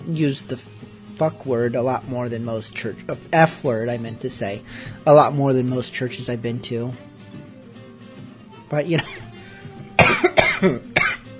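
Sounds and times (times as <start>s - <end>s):
speech: 0.1s - 7.1s, 8.7s - 9.2s, 10.2s - 11.0s
harsh coughs: 10.0s - 11.3s.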